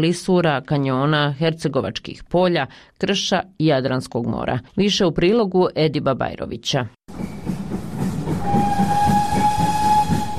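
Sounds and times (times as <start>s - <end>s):
speech: 0.0s - 7.4s
narrow-gauge steam train rumbling and clattering: 7.1s - 10.3s
narrow-gauge steam locomotive whistle on an old mountain railway: 8.2s - 10.3s.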